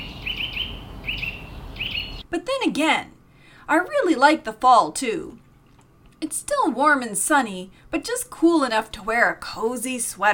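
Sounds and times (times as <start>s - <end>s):
songbirds of different kinds chirping in leafy trees: 0.0s - 2.2s
steady low outdoor hum: 0.0s - 10.3s
speech: 2.3s - 5.4s, 6.2s - 10.3s.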